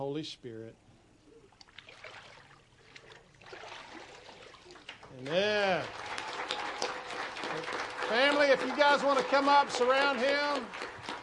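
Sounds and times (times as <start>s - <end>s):
speech: 0.0s - 0.8s, 5.1s - 6.1s, 7.6s - 10.8s
warm water sloshing and splashing during baptism immersion: 1.5s - 5.0s.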